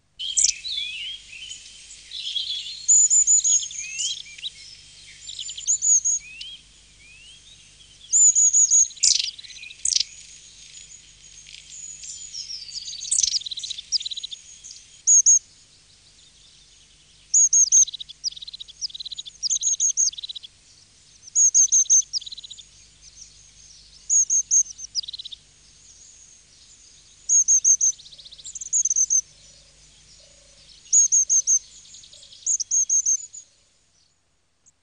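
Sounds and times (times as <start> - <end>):
long-tailed tit calling: 0.2 - 7.4, 8.0 - 15.4, 17.3 - 20.5, 21.2 - 23.4, 24.0 - 26.2, 27.1 - 29.3, 30.1 - 33.4.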